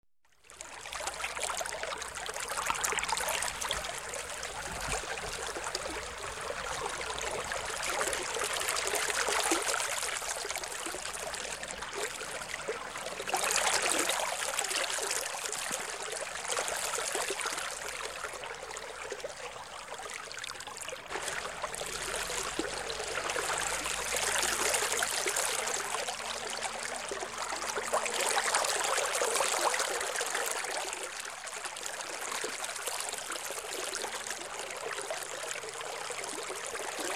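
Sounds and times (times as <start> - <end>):
melodious babbling of a river: 0.6 - 37.1.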